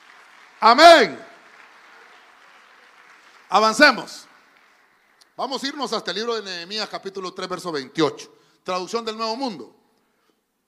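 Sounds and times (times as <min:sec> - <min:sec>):
large crowd clapping loudly: 0:00.0 - 0:06.6
speech: 0:00.6 - 0:01.3, 0:03.5 - 0:04.3, 0:05.4 - 0:09.8.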